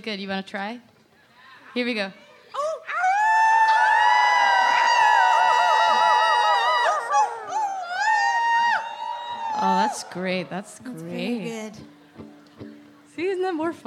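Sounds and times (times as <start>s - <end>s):
speech: 0.0s - 0.9s, 1.8s - 2.2s, 9.9s - 12.4s, 13.2s - 13.8s
audience howling like wolves: 2.9s - 11.4s.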